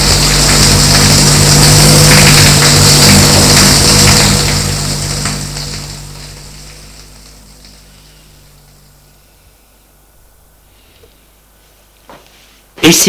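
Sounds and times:
hand-held shower head spraying water to rinse the shower: 0.0s - 9.2s
low humming drone: 0.0s - 11.7s
speech: 12.9s - 13.0s.

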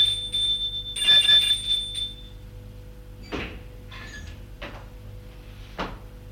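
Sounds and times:
bright doorbell ringing: 0.0s - 2.4s.

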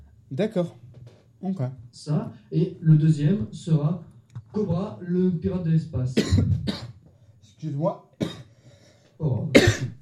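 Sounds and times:
speech: 0.3s - 0.8s, 1.4s - 6.8s, 7.6s - 8.4s, 9.2s - 10.0s
smoker's harsh raspy hacking cough: 6.2s - 7.0s, 8.2s - 8.5s, 9.5s - 10.0s.

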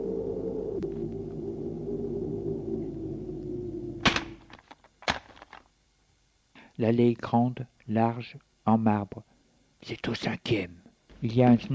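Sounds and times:
low electric buzz of apartment building entrance door opener: 0.0s - 9.9s
apartment building entrance door solid thud: 4.0s - 5.5s
speech: 6.8s - 11.7s.

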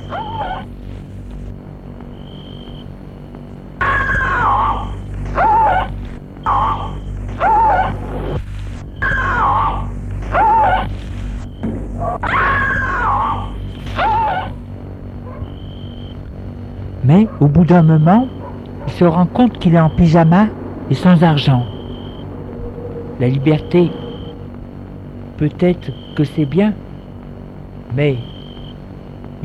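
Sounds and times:
low steady hum: 0.0s - 29.4s
horrible screaming: 3.8s - 8.0s, 9.0s - 10.9s, 12.2s - 14.6s
speech: 17.1s - 18.4s, 19.0s - 21.7s, 23.2s - 24.0s, 25.4s - 26.8s, 27.9s - 28.3s.

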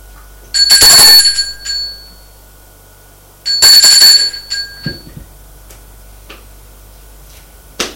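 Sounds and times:
doorbell ringing: 0.6s - 2.3s, 3.5s - 5.2s.

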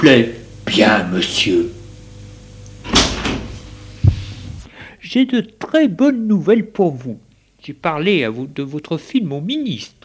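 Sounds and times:
speech: 0.0s - 1.8s, 5.1s - 10.0s
door opening: 2.8s - 4.7s
dull low thump: 4.0s - 4.7s.

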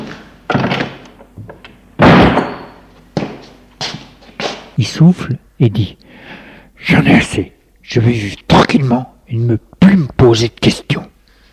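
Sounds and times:
office door closing with heavy resonant thud: 0.0s - 2.8s
speech: 4.8s - 11.0s.

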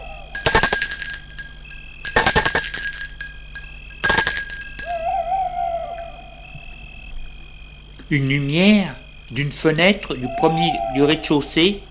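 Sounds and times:
faint wavering tone: 0.0s - 6.6s
doorbell ringing: 0.4s - 5.2s
speech: 8.1s - 11.8s.

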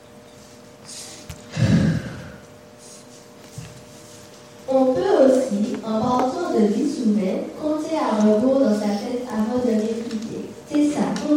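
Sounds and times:
person breathing deeply with a breathy exhale: 0.9s - 2.5s
speech: 4.7s - 10.1s.

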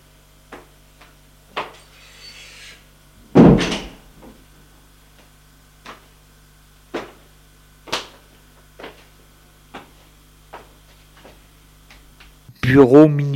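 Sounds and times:
heavy thud: 3.2s - 4.1s
sharp knocks on a wooden door: 3.4s - 3.9s
speech: 12.7s - 13.3s.

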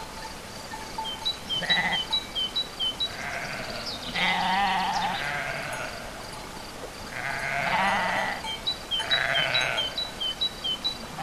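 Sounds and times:
small birds chirping at a farm: 0.0s - 11.2s
sheep bleating at a farm: 1.5s - 2.2s, 3.1s - 6.2s, 7.1s - 8.4s, 9.0s - 10.0s.

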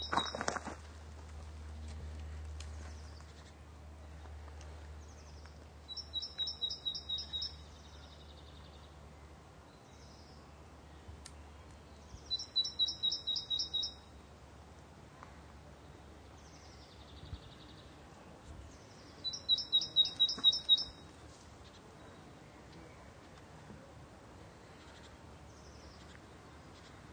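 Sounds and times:
faint steady low hum: 0.0s - 27.1s
great tit calling in woodland with tall trees: 5.9s - 7.6s, 12.2s - 14.0s, 19.2s - 21.0s.

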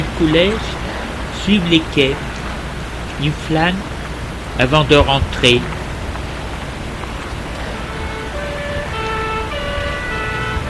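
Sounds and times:
police and ambulance sirens wailing at a scene on the quays: 0.0s - 2.4s, 7.4s - 10.6s
constant roar of city traffic: 0.0s - 10.6s
speech: 0.2s - 0.8s, 1.4s - 2.3s, 3.2s - 3.9s, 4.6s - 5.8s.

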